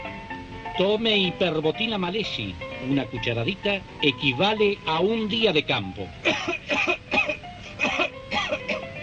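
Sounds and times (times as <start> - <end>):
speech: 0.8 - 6.9
harsh coughs: 6.3 - 8.9.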